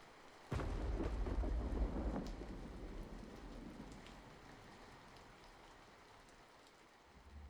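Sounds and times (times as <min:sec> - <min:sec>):
steady rain: 0:00.0 - 0:07.4
thunder crack and rumble: 0:00.5 - 0:05.7.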